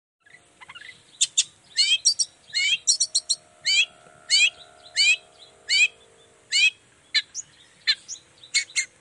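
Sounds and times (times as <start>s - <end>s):
Long-tailed shrike harsh rasping song in the morning: 1.6s - 8.7s.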